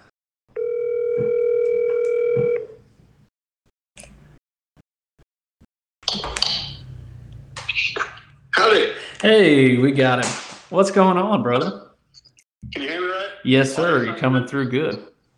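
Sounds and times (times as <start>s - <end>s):
telephone call tone as a number is dialled: 0.5s - 2.8s
speech: 8.7s - 11.9s, 12.7s - 15.1s.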